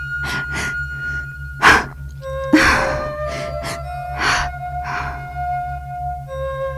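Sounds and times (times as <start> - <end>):
quick shallow anxious breaths: 0.0 - 2.0, 2.6 - 5.4
soft steady musical drone: 0.0 - 6.7.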